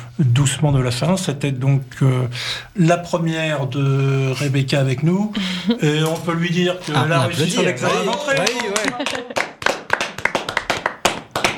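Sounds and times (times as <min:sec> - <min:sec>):
speech: 0:00.2 - 0:09.5
laughter: 0:05.2 - 0:09.8
small group of people clapping: 0:07.5 - 0:11.5.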